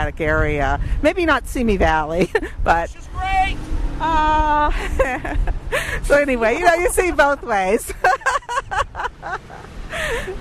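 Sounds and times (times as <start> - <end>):
speech: 0.0 - 10.3
voice shouting from a passing car window: 2.9 - 4.6
laughter: 4.6 - 10.3.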